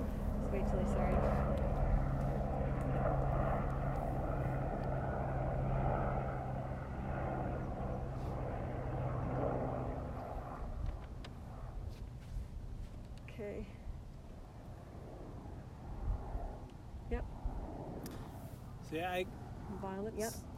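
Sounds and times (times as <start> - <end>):
helicopter droning overhead: 0.0 - 20.5
speech: 13.4 - 13.8, 18.9 - 20.4.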